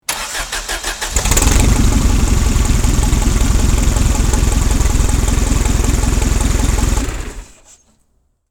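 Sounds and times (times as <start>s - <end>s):
forklift engine ignition: 0.0s - 7.7s.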